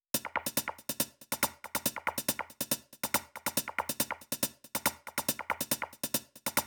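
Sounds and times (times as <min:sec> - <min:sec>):
trance drum loop: 0:00.2 - 0:06.6.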